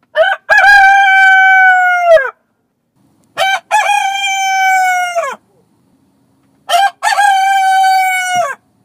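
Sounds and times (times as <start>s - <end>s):
rooster crowing: 0.2s - 2.4s, 3.4s - 5.4s, 6.7s - 8.6s.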